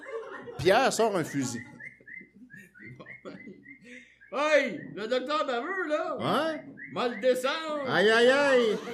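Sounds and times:
laughter: 0:00.0 - 0:04.2, 0:08.5 - 0:08.9
speech: 0:00.6 - 0:01.7, 0:04.3 - 0:08.9
bird singing loudly with bright whistled notes: 0:01.1 - 0:05.1, 0:06.3 - 0:07.7.

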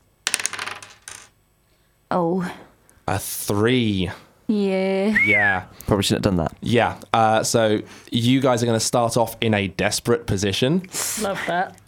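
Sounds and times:
dice rolled across a hard table surface during a tabletop game: 0:00.2 - 0:01.3
speech: 0:02.1 - 0:11.8.

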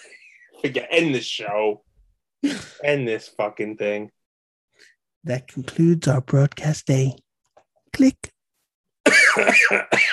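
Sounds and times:
speech: 0:00.6 - 0:04.2, 0:04.8 - 0:07.2, 0:07.9 - 0:08.3, 0:09.3 - 0:10.1
harsh raspy coughs: 0:09.0 - 0:10.1.

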